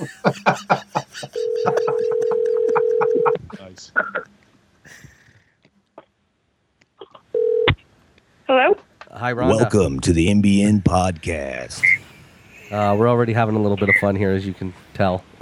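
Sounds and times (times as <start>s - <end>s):
laughter: 0.0s - 4.3s, 11.8s - 13.3s
steady telephone tone as a call connects: 1.4s - 3.4s, 7.4s - 7.7s
speech: 9.3s - 12.0s, 12.7s - 15.4s.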